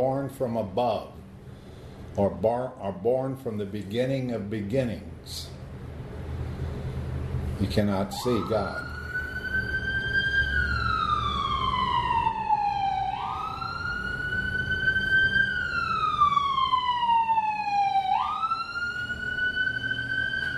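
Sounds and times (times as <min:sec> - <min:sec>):
speech: 0:00.0 - 0:01.3, 0:02.2 - 0:05.5, 0:07.6 - 0:08.9
low rumble of traffic: 0:00.0 - 0:20.5
emergency vehicle siren wailing: 0:07.7 - 0:20.5.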